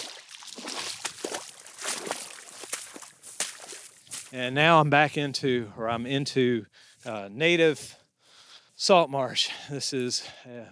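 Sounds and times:
footsteps sloshing through a little pond in a salt marsh: 0.0 - 4.4
speech: 4.3 - 8.0, 8.8 - 10.7.

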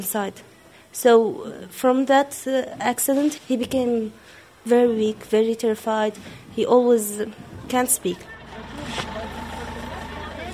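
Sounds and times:
speech: 0.0 - 9.1
faint voices murmuring: 7.2 - 10.5
two small buses pulling out into the street between a school and an olive grove: 7.7 - 10.5.

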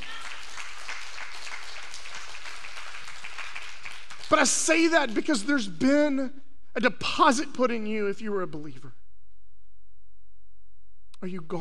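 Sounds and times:
large crowd applauding: 0.0 - 5.4
speech: 4.3 - 9.0, 11.2 - 11.5.

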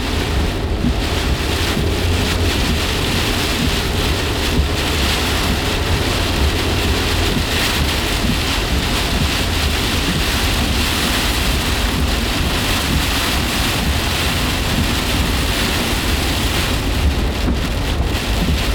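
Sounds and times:
low rumbling wind: 0.0 - 18.7
steady dense rain with some hail: 0.0 - 18.7.

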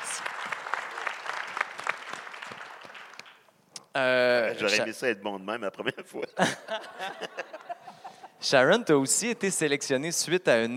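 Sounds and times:
room full of people clapping: 0.0 - 3.6
speech: 4.0 - 7.4, 8.4 - 10.7
laughter: 6.3 - 8.4.

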